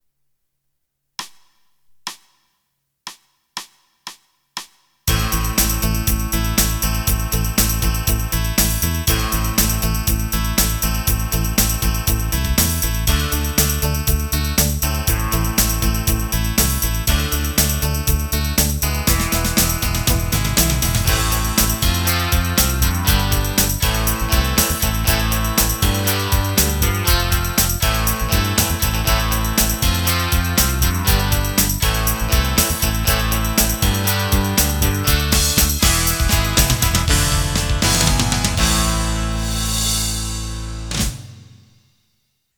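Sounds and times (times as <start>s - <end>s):
pop rock music: 5.1s - 41.6s.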